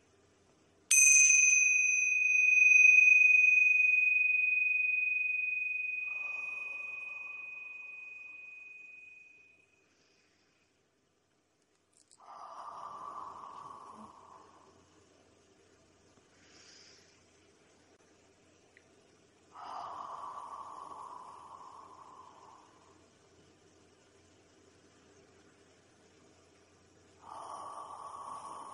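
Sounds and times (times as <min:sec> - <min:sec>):
tingsha cymbals ringing: 0:00.9 - 0:10.4, 0:12.6 - 0:14.8, 0:19.6 - 0:23.0, 0:27.2 - 0:28.7
soft breathy sound: 0:01.7 - 0:11.0, 0:12.0 - 0:15.2, 0:16.2 - 0:17.6, 0:19.4 - 0:23.2, 0:27.2 - 0:28.7.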